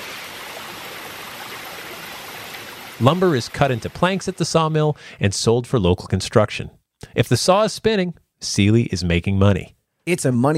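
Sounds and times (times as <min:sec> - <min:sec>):
flowing stream water: 0:00.0 - 0:04.8
speech: 0:03.0 - 0:10.5.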